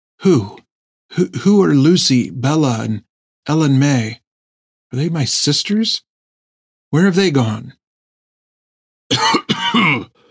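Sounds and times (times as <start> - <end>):
speech: 0.2 - 4.2, 4.9 - 6.1, 6.9 - 7.8
man coughing: 9.1 - 10.2.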